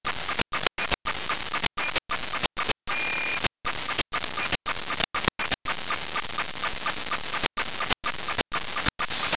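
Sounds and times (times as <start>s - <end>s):
FM radio signal: 0.0s - 9.3s.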